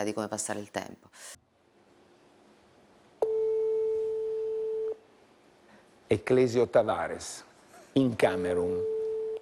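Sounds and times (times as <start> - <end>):
speech: 0.0 - 1.4, 6.1 - 8.9
steady telephone tone after a call is hung up: 3.2 - 5.0, 8.6 - 9.4.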